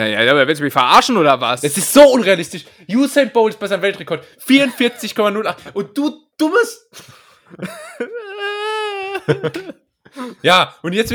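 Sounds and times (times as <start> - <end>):
speech: 0.0 - 8.4, 9.3 - 11.1
man crying with a high-pitched wail and sobbing: 4.5 - 6.0, 6.9 - 10.6
laughter: 4.6 - 5.9, 7.0 - 10.4.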